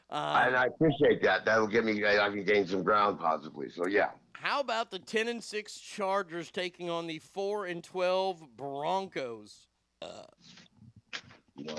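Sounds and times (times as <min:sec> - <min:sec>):
speech: 0:00.1 - 0:10.7, 0:11.6 - 0:11.7
loud low drawn-out burp: 0:10.0 - 0:10.4.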